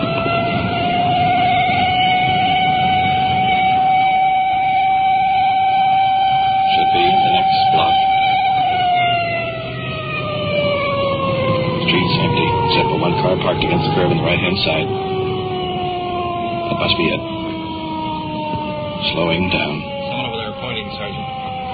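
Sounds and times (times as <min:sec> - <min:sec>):
police car engine rumble and road noise: 0:00.0 - 0:21.7
police car siren wailing: 0:00.0 - 0:21.7.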